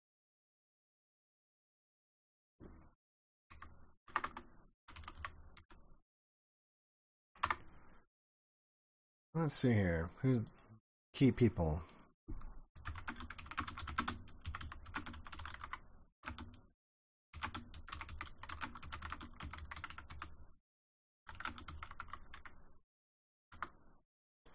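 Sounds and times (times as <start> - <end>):
one-handed hunt-and-peck typing on a computer keyboard: 3.5 - 5.8, 7.4 - 7.7, 12.8 - 16.7, 17.4 - 20.4, 21.3 - 22.6, 23.5 - 23.8
speech: 9.4 - 13.0.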